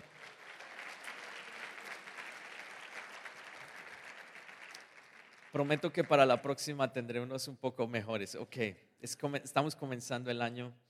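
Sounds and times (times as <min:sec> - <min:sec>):
crowd applause: 0:00.0 - 0:06.4
speech: 0:05.5 - 0:10.8.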